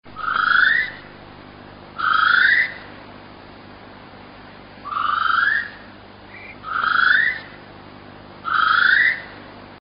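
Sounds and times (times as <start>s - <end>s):
female great spotted kiwi calling: 0.1s - 1.2s, 1.9s - 3.0s, 4.8s - 7.7s, 8.4s - 9.4s.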